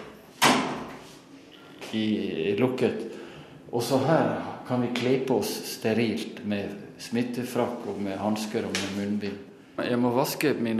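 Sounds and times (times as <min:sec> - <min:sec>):
door swinging shut with a solid thud: 0:00.0 - 0:01.0
speech: 0:01.9 - 0:10.7.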